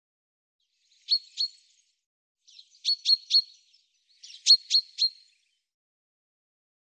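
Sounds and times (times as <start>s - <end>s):
bird chirping: 0.7s - 5.7s.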